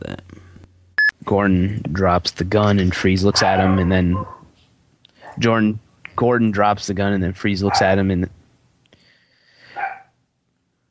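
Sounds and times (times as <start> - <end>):
speech: 1.3 - 4.4, 5.4 - 8.4
dog barking: 3.3 - 4.5, 5.2 - 5.4, 7.7 - 7.9, 9.7 - 10.2.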